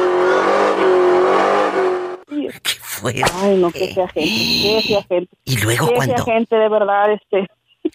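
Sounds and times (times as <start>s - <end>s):
car engine revving hard through a tire burnout: 0.0s - 2.3s
speech: 3.0s - 7.9s.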